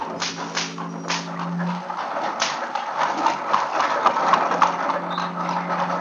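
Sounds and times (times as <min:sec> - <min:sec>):
horse hooves clopping: 0:00.0 - 0:05.9
horse-drawn wagon wheels rumbling and rattling on a rocky way: 0:00.0 - 0:05.9
low droning undertone: 0:00.0 - 0:05.9
whips cracking: 0:00.2 - 0:01.4, 0:02.4 - 0:02.7.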